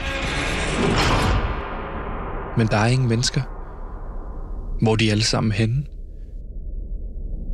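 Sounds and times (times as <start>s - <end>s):
door bursting open: 0.0s - 2.6s
speech: 2.6s - 3.6s, 4.8s - 5.9s.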